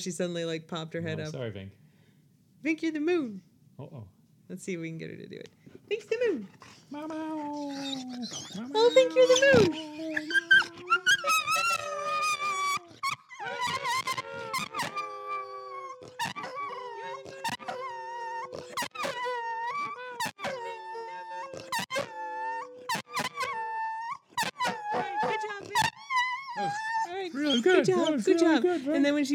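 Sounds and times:
speech: 0:00.0 - 0:01.8, 0:02.6 - 0:11.1, 0:27.8 - 0:29.3
dog howling: 0:06.6 - 0:28.6.

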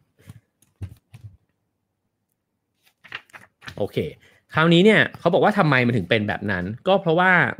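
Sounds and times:
book pages turning: 0:02.8 - 0:04.1
speech: 0:03.8 - 0:07.5.

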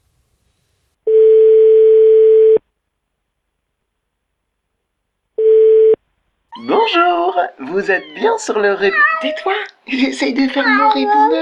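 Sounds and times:
telephone line tones while calling someone back: 0:01.1 - 0:02.6, 0:05.4 - 0:06.0
speech: 0:06.8 - 0:11.4.

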